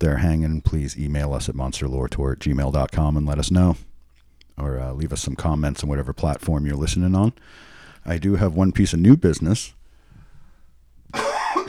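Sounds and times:
speech: 0.0 - 3.9, 4.6 - 9.8
harsh phlegmy cough clearing the throat: 11.1 - 11.6.

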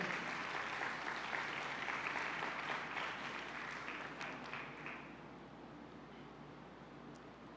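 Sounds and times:
audience applause: 0.0 - 5.1.

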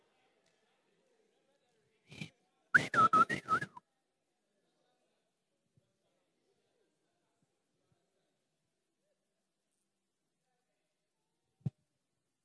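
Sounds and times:
person behind a wall whistling a short signal: 2.1 - 3.8.

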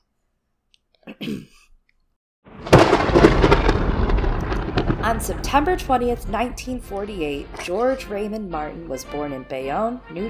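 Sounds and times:
throat clearing: 1.0 - 1.8
speech: 1.2 - 1.6, 5.0 - 10.2
loud rumbling thunderclap: 2.5 - 9.2.

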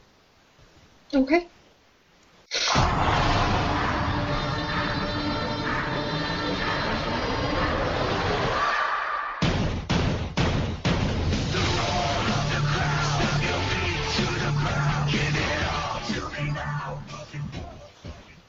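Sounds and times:
speech: 1.1 - 1.6
heavy intro theme music for a wrestling show: 2.7 - 8.7, 9.4 - 17.6.

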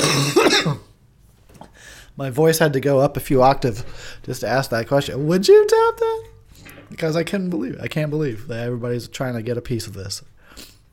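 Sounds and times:
harsh cough with throat-clearing rasp: 0.0 - 1.0
speech: 2.2 - 6.3, 6.9 - 10.7.

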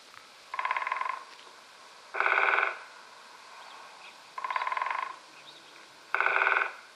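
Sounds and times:
woodpecker drumming on a tree: 0.5 - 1.5, 2.1 - 3.0, 4.0 - 6.9.

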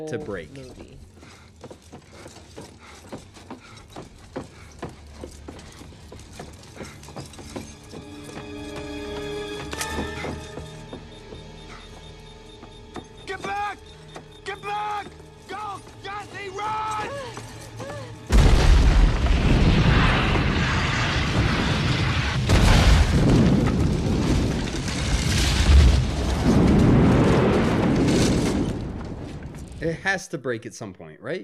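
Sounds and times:
speech: 0.0 - 1.8, 30.0 - 31.4
film explosion set off by a tripwire: 18.3 - 29.8.

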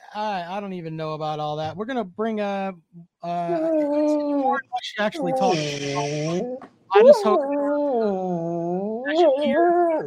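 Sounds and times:
speech: 0.1 - 10.0
dog whimpering: 3.5 - 10.0.

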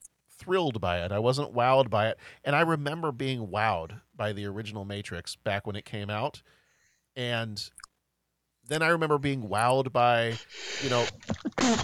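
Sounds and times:
speech: 0.5 - 6.6, 7.2 - 7.8, 8.6 - 11.8
person sneezing: 10.4 - 11.8.

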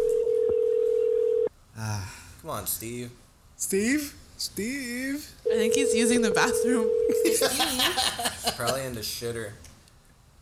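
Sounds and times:
phone outgoing call ringing tone: 0.0 - 1.5, 5.4 - 7.4
speech: 2.4 - 9.7
laughter: 7.1 - 9.0.

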